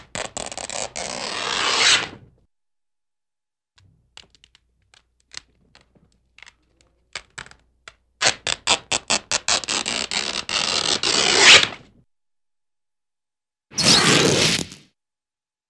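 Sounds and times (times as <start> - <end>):
cartoon long slow tears with quick rip at tail: 0.4 - 2.2, 9.0 - 11.8, 13.8 - 14.9.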